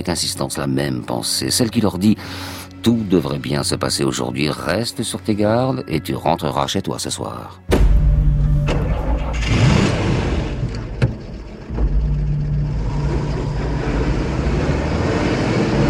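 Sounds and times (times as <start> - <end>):
speech: 0.0 - 7.8
armored security van engine running with a loud low rumble: 8.0 - 15.8
armored security van engine cranking and starting: 8.7 - 15.0.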